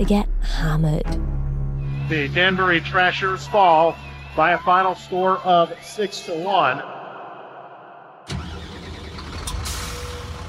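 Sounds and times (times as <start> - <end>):
speech: 0.0 - 1.3, 2.1 - 7.0
team bus diesel engine starting and rumbling: 8.3 - 10.4.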